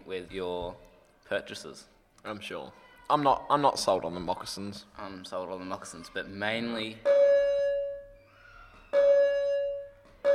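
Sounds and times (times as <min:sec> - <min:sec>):
speech: 0:00.1 - 0:07.2
school bell ringing at a school marking the end of recess: 0:07.0 - 0:08.2, 0:08.9 - 0:10.3.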